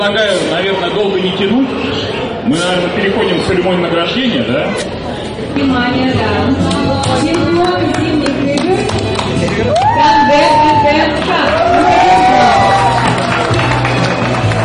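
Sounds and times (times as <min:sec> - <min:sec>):
speech: 0:00.0 - 0:13.0
crowd cheering and clapping for winners at an award ceremony: 0:07.0 - 0:14.6
individual whoops and shouts from the crowd: 0:09.7 - 0:13.2.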